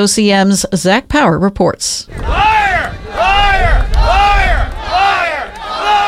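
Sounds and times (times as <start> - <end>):
speech: 0.0 - 2.4
protest crowd chanting in rhythmic unison: 2.1 - 6.0.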